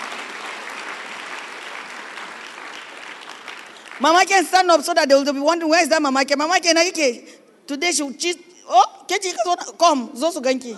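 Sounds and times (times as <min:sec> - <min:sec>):
audience clapping: 0:00.0 - 0:04.6
speech: 0:04.0 - 0:10.7.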